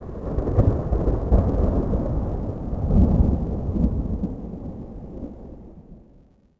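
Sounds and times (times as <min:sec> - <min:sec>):
distant thunder: 0:00.0 - 0:06.1.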